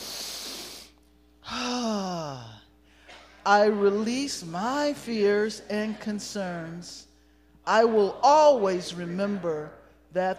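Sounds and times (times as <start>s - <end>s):
long airy deep inhale during a guided spoken prayer: 0.0s - 2.2s
speech: 3.4s - 7.1s, 7.7s - 10.3s.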